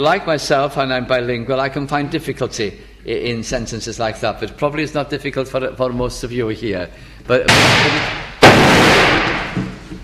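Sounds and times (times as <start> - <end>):
speech: 0.0 - 8.2
fireworks going off outside: 7.5 - 9.9.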